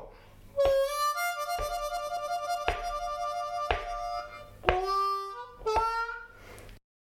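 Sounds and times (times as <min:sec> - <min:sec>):
harmonica warble lick: 0:00.6 - 0:06.4.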